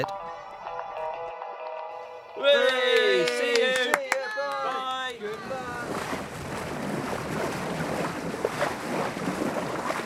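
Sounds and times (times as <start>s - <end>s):
speech: 0.0s - 0.2s, 2.4s - 2.9s
wind and water rushing around a 12-metre sailing yacht setting out to sea: 2.8s - 10.0s.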